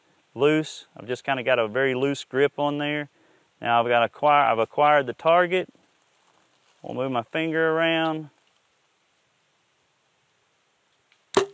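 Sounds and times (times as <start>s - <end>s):
speech: 0.4s - 5.8s, 6.8s - 8.4s
bow string snap as an arrow is loosed: 11.0s - 11.5s.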